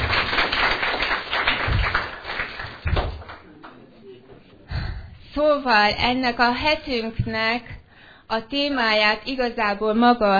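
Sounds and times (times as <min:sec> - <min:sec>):
small group applauding: 0:00.0 - 0:04.0
speech: 0:05.4 - 0:10.3.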